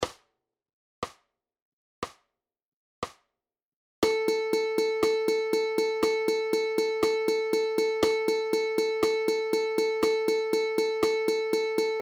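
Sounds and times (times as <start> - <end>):
ukulele playing 16th notes: 4.0 - 12.0.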